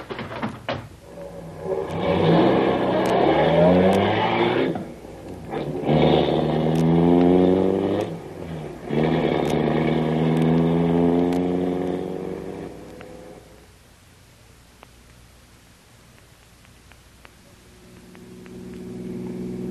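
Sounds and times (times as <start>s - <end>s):
car engine accelerating in a chase: 1.0s - 13.6s, 17.6s - 19.6s.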